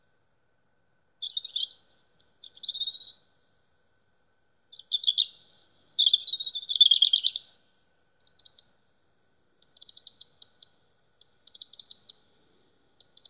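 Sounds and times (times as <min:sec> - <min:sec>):
European robin singing in Saint-Amant-de-Boixe France: 0:01.2 - 0:03.3, 0:04.7 - 0:13.2.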